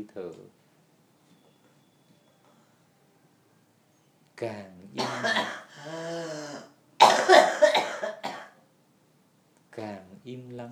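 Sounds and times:
speech: 0.0s - 0.6s, 4.4s - 6.5s, 9.8s - 10.7s
forceful coughing during a breathing meditation: 5.0s - 8.6s.

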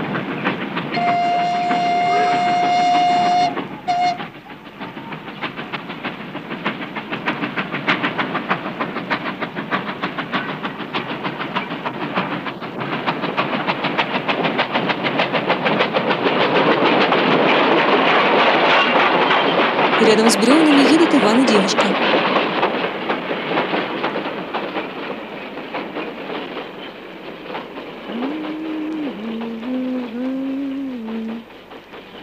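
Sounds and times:
freight train hauling logs rumbling through a forest: 0.0s - 32.2s
freight train locomotive whistle: 0.9s - 5.2s, 28.1s - 31.4s.

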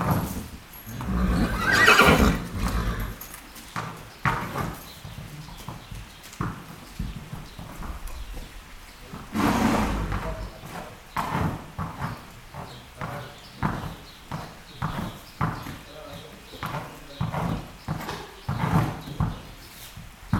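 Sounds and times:
horse hooves knocking and shuffling in a stable: 0.0s - 20.3s
horses snorting in a stable in Céreste, Alpes-de-Haute-Provence: 0.0s - 20.3s
horse whinny in a stable: 0.9s - 3.3s, 9.3s - 10.4s.

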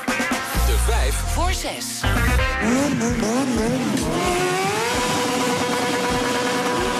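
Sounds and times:
speech: 1.1s - 4.8s
motorcycle engines revving at a motorcycle fair in Utrecht: 2.0s - 6.9s.

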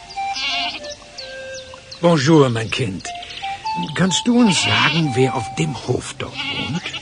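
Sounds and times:
goats bleating while driven across a farm field: 0.3s - 0.9s, 4.1s - 5.4s, 6.2s - 6.9s
speech: 2.0s - 3.2s, 3.8s - 6.9s.

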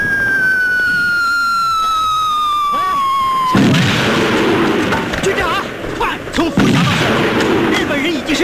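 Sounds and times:
long loud descending artillery shell whistle in a war film: 0.0s - 4.4s
heavy artillery blast in a war film: 0.0s - 8.2s
sustained rumbling bursts of artillery fire in a war film: 0.0s - 8.4s.

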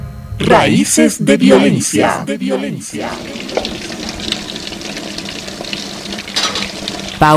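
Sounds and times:
speech: 0.5s - 3.7s
dishes being washed under running water from a tap: 3.0s - 7.3s.

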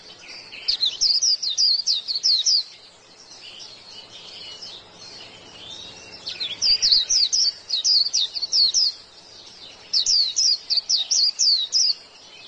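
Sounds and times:
white-eye twittering song: 0.0s - 12.4s.

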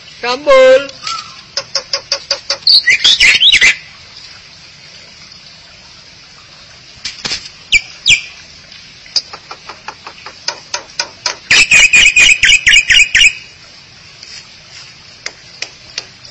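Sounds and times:
speech: 0.2s - 1.0s
starling or myna clicks and harsh chattering: 1.6s - 3.2s, 9.2s - 13.3s.

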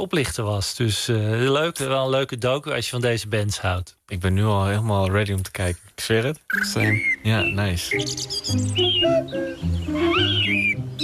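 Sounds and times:
speech: 0.0s - 11.0s
birdsong-like jingle with bright whistling over a steady tonal backing: 6.5s - 11.0s.

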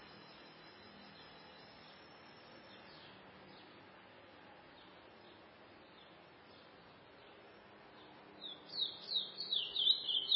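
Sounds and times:
low steady background noise: 0.0s - 10.3s
chestnut-bellied seed finch whistled warble: 9.5s - 10.3s.

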